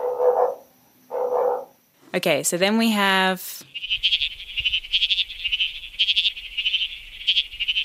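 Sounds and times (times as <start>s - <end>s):
bleating froglet calling with high buzzy trills: 0.0s - 1.9s, 3.6s - 7.8s
speech: 2.2s - 4.3s.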